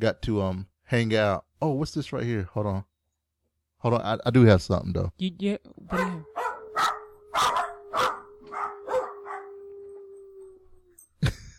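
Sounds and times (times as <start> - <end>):
speech: 0.0 - 2.9, 3.8 - 6.4
dogs barking: 5.9 - 10.6
drawn-out howling tone: 6.3 - 11.0.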